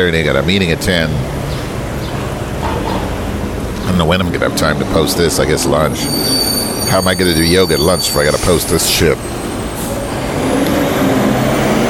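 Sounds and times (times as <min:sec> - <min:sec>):
speech: 0:00.0 - 0:01.4, 0:04.0 - 0:09.4
garbage truck heavy engine droning with high whine: 0:00.0 - 0:11.8
garbage truck air brakes hissing: 0:05.9 - 0:10.3.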